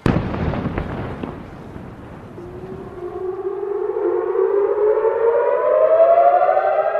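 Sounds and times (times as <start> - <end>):
explosions: 0.0 - 3.0
air raid siren wailing across the rooftops of Jerusalem at night: 0.0 - 6.9.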